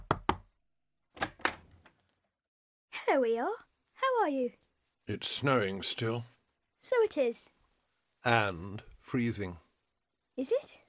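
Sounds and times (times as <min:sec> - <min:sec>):
knocking on a door: 0:00.0 - 0:00.5
speech: 0:03.1 - 0:07.5, 0:08.2 - 0:09.6, 0:10.4 - 0:10.8.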